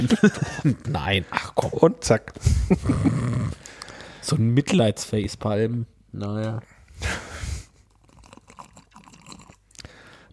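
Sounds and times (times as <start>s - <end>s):
laughter: 0.0s - 1.0s, 2.4s - 3.3s
speech: 0.0s - 3.6s, 4.2s - 7.3s
man slurping hot coffee: 7.0s - 9.9s
swallowing and small mouth clicks: 7.8s - 9.9s.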